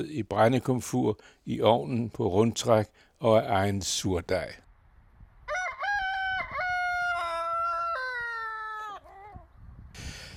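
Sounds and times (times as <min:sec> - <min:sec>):
speech: 0:00.0 - 0:04.6
rooster crowing: 0:05.5 - 0:09.4.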